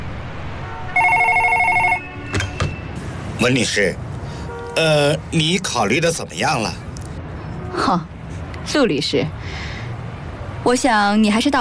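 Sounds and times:
telephone ringing with electronic bell: 0:01.0 - 0:02.1
speech: 0:03.4 - 0:04.1, 0:04.8 - 0:06.8, 0:07.8 - 0:08.1, 0:08.7 - 0:09.6, 0:10.6 - 0:11.5.

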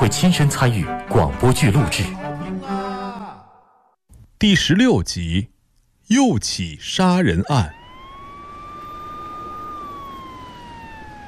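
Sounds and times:
speech: 0:00.0 - 0:02.2, 0:04.4 - 0:05.5, 0:06.1 - 0:07.8
police siren wailing: 0:07.3 - 0:11.2.

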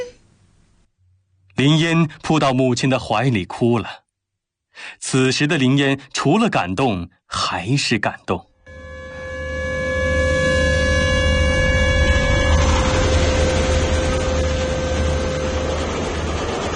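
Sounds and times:
speech: 0:01.6 - 0:04.0, 0:04.8 - 0:08.5
train horn blaring: 0:08.6 - 0:16.4
train rumbling along railway tracks: 0:12.0 - 0:16.7.

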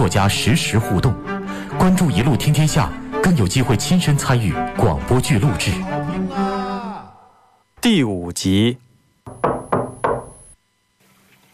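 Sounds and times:
speech: 0:00.0 - 0:06.5, 0:07.8 - 0:08.8
polite knocking on a dormitory door: 0:09.2 - 0:10.5.

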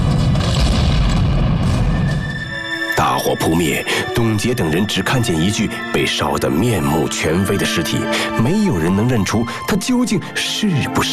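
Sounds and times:
wheelchair explosion roaring blast: 0:00.0 - 0:02.6
speech: 0:03.2 - 0:11.1.

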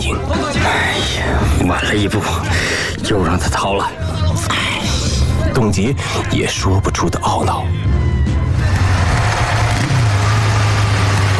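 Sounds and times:
speech: 0:00.1 - 0:04.6, 0:05.6 - 0:07.8
motorcycle engine roaring at speed: 0:08.5 - 0:11.3.

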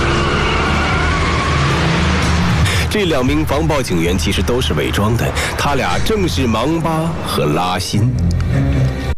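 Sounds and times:
car engine accelerating hard out of an alley: 0:00.0 - 0:02.9
speech: 0:02.9 - 0:09.0.

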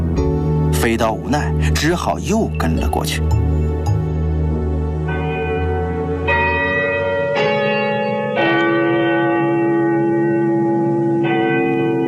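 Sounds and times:
speech: 0:00.8 - 0:03.6
large clock tower bell tolling: 0:02.5 - 0:12.0.

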